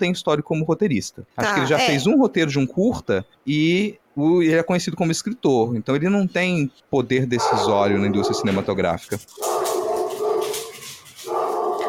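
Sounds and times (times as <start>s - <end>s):
speech: 0.0s - 9.8s
dog barking and whining in the background: 7.4s - 8.7s, 9.3s - 11.8s.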